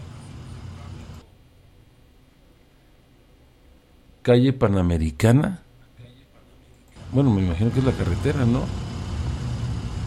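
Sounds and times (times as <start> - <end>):
congested road traffic rumble in the northern zone: 0.0 - 1.2, 7.0 - 10.0
engines idling and droning: 0.0 - 1.2, 7.0 - 10.0
speech: 4.2 - 5.6, 7.1 - 8.8.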